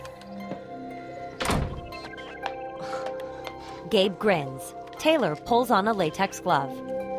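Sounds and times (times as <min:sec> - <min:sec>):
remote-controlled room door shutting: 0:01.4 - 0:02.1
speech: 0:03.9 - 0:07.0.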